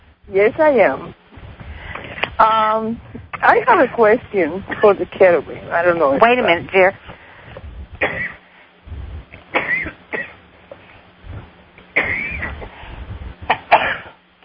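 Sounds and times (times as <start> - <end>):
speech: 0.3 - 1.2, 2.4 - 7.2
person coughing from a tickle in the throat: 8.0 - 8.4, 9.6 - 10.4, 12.0 - 12.7, 13.5 - 14.2.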